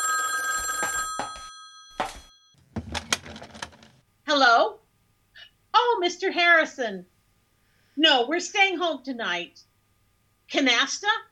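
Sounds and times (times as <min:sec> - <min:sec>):
old telephone bell ringing: 0:00.0 - 0:02.6
telephone receiver being lifted: 0:02.6 - 0:04.0
speech: 0:04.4 - 0:04.8, 0:06.0 - 0:07.1, 0:08.0 - 0:09.7, 0:10.5 - 0:11.3.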